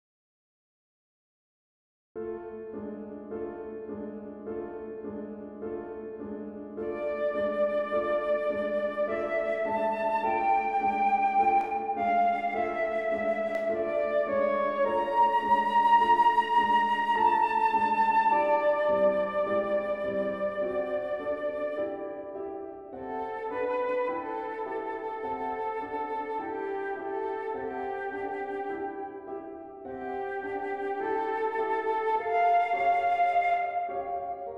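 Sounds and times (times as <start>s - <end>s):
piano: 2.2s - 34.5s
flute: 6.8s - 34.5s.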